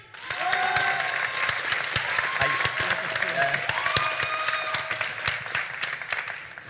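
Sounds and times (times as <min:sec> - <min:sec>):
crowd clapping in a decibel-meter vote: 0:00.0 - 0:06.6
crowd whooping and shouting: 0:00.1 - 0:01.3, 0:02.1 - 0:02.9, 0:03.6 - 0:05.2.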